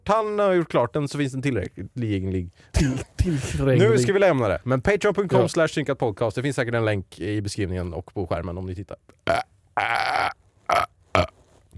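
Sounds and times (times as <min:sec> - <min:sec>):
speech: 0:00.1 - 0:10.2
burps: 0:09.2 - 0:11.4.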